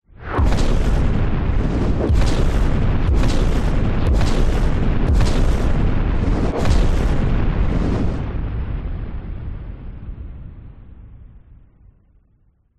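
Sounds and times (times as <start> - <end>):
warfare missile explosions: 0.1 - 11.5
incoming warfare missiles whizzing by: 0.2 - 8.2.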